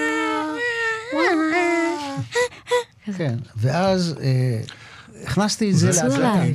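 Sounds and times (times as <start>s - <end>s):
woman's voice imitating a baby's cry in a studio: 0.0s - 2.9s
speech: 3.1s - 6.5s.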